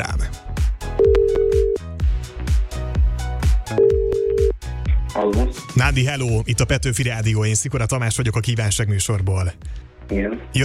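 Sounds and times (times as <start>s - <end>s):
speech: 0.0s - 0.2s, 5.8s - 10.6s
loud punchy music bed with steady drum beat: 0.0s - 7.2s
outgoing phone call ringback tone: 1.0s - 1.8s, 3.7s - 4.6s.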